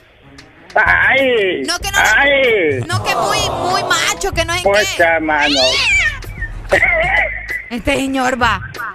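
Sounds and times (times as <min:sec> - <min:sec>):
speech: 0:00.7 - 0:06.1, 0:06.7 - 0:07.0, 0:07.7 - 0:08.9
cat meowing: 0:05.4 - 0:06.2.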